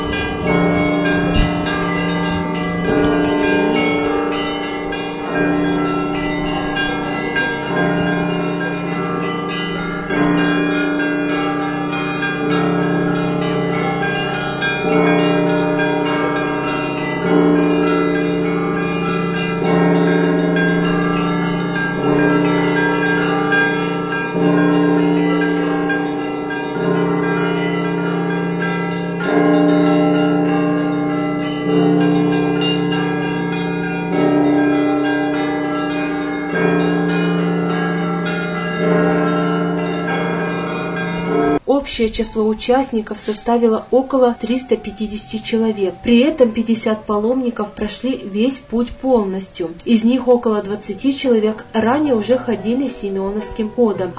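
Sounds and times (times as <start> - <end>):
church bells ringing festively in a full peal: 0.0 - 54.1
speech: 42.0 - 54.1.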